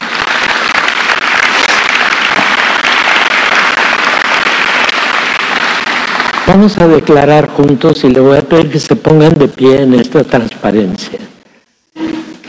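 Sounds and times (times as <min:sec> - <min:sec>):
audience applauding: 0:00.0 - 0:07.4
speech: 0:06.5 - 0:11.3.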